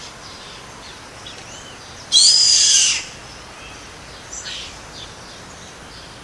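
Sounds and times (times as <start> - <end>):
yellow-headed caracara Milvago chimachima harsh hissing scream in Comandatuba, Bahia, Brazil: 2.1 - 3.2.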